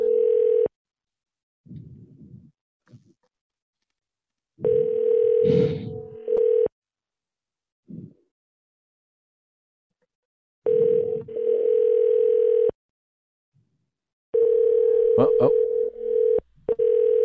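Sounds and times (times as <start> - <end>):
telephone ringing rapidly with an unstable ring: 0.0 - 0.7, 4.6 - 6.7, 10.7 - 12.8, 14.4 - 17.2
people talking: 15.2 - 15.6.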